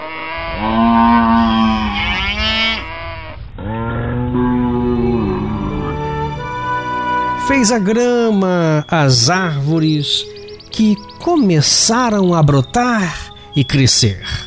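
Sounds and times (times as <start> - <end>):
cow mooing: 0.0 - 12.2
speech: 7.6 - 14.4.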